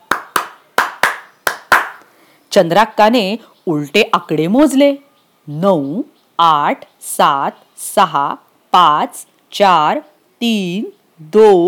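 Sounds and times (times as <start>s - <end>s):
hands clapping: 0.0s - 2.1s
speech: 2.5s - 11.6s.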